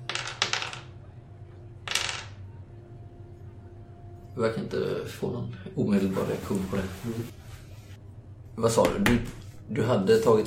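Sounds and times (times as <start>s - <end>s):
dice clattering across a hard table: 0.1s - 0.9s, 1.8s - 2.4s
speech: 4.4s - 7.4s, 8.6s - 10.4s.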